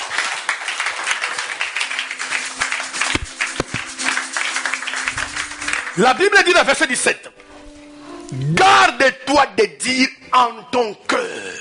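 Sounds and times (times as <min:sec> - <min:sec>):
congregation applauding during a church service: 0:00.0 - 0:07.2
speech: 0:06.0 - 0:07.4, 0:08.3 - 0:11.3.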